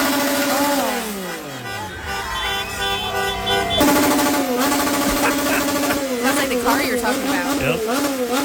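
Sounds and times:
several motorcycle engines revving outside at night in Mexico: 0:00.0 - 0:08.4
laughter: 0:01.5 - 0:07.8.

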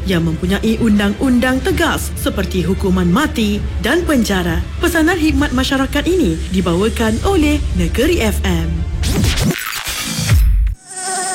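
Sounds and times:
speech: 0:00.1 - 0:09.3
Aedes mosquito buzzing: 0:10.8 - 0:11.3.

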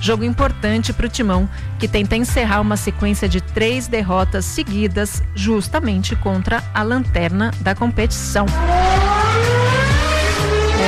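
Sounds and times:
speech: 0:00.0 - 0:08.8
race cars roaring at the Italian Grand Prix on the Monza circuit: 0:08.5 - 0:10.8.

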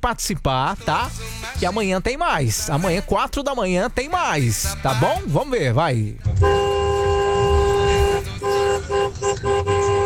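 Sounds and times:
speech: 0:00.0 - 0:06.7
low traffic rumble: 0:06.0 - 0:10.0
car horn blaring and honking: 0:06.4 - 0:10.0.

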